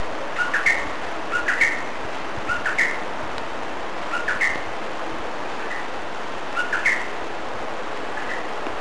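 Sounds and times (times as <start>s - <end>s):
steady background hiss: 0.0s - 8.7s
unidentified bird thin rising chirps in Brazil: 0.4s - 1.9s, 2.5s - 3.0s, 4.1s - 4.7s, 6.6s - 7.2s.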